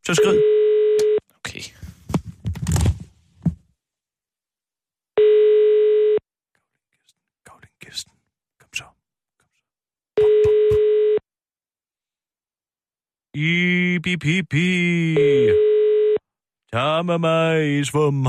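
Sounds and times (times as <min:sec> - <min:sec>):
speech: 0:00.1 - 0:00.6, 0:13.4 - 0:15.8, 0:16.7 - 0:18.2
buzzy telephone ringing tones: 0:00.1 - 0:01.2, 0:05.2 - 0:06.2, 0:10.2 - 0:11.2, 0:15.2 - 0:16.2
person whispering: 0:01.3 - 0:01.9, 0:06.9 - 0:09.6.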